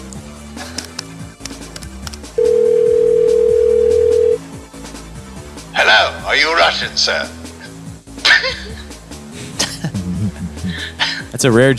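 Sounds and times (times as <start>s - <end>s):
soft music: 0.0s - 11.7s
telephone steady electronic tone: 2.4s - 4.4s
speech: 6.4s - 7.4s, 11.4s - 11.7s
laughter: 8.2s - 11.3s.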